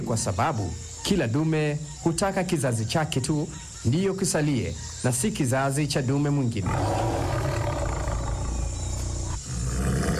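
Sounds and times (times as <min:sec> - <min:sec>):
speech: 0:00.0 - 0:07.5
lion roaring: 0:06.6 - 0:10.1.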